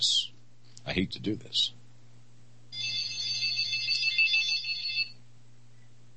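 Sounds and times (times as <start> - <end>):
speech: 1.0 - 1.8
telephone ringtone trilling: 2.8 - 5.2.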